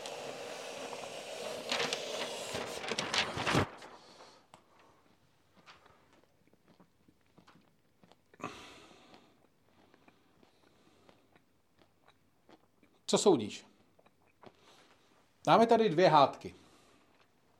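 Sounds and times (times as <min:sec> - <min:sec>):
flipchart paper sharp rip-like crackle: 0:00.0 - 0:04.4
large flipchart sheets rustling and crinkling: 0:00.0 - 0:04.9
speech: 0:13.1 - 0:13.7, 0:15.5 - 0:16.6.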